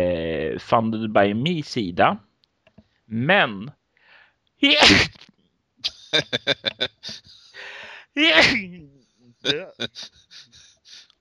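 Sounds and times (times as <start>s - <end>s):
speech: 0.6s - 2.3s, 3.1s - 3.8s, 4.6s - 7.4s, 8.2s - 10.5s
short sharp vocal sounds: 4.7s - 7.3s, 9.5s - 10.5s
person sneezing loudly: 4.8s - 5.2s, 7.0s - 8.6s
laughter: 5.9s - 7.4s, 9.5s - 10.6s.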